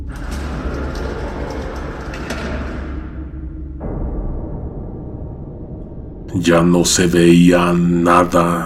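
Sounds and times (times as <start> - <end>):
brighter clatter of elevator: 0.0 - 3.4
elevator mechanism rumbling and whirring: 0.0 - 3.8
speech: 6.4 - 8.6.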